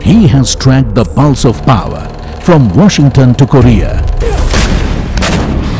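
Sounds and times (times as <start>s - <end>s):
speech: 0.1s - 4.8s
weapon fire at a firing range: 4.4s - 5.7s.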